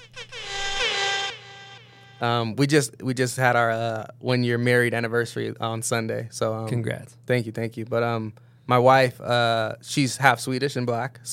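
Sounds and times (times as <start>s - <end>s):
loud brassy air horn blast: 0.0s - 2.3s
speech: 2.2s - 11.3s.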